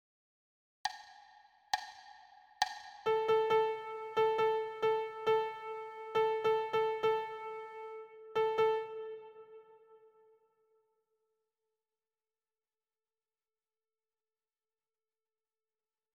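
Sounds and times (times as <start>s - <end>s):
rhythmic dictation exercise: 0.9s - 9.5s.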